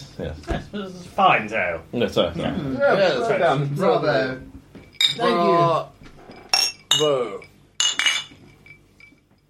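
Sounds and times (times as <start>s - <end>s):
speech: 0.2s - 4.5s, 5.2s - 5.9s, 7.0s - 7.5s
glasses clinking in a toast: 4.8s - 5.4s, 6.2s - 9.4s.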